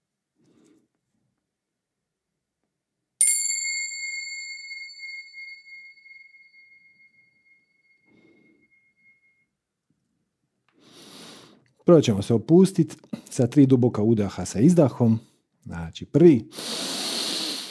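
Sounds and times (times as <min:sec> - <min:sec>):
small bell struck during a relaxation breathing exercise: 0:03.2 - 0:09.5
speech: 0:11.9 - 0:16.8.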